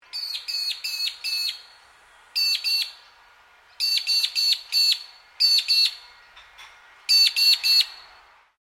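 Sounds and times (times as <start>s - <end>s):
faint background hiss: 0.0s - 8.5s
magpie-lark sharp ringing calls in Queensland: 0.1s - 1.7s, 2.4s - 3.0s, 3.8s - 6.4s, 7.1s - 8.2s.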